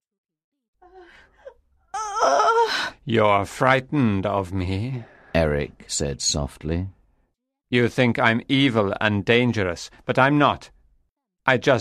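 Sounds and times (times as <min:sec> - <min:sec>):
woman moaning in pain: 0:00.8 - 0:03.0
speech: 0:02.2 - 0:07.0, 0:07.7 - 0:10.8, 0:11.4 - 0:11.7.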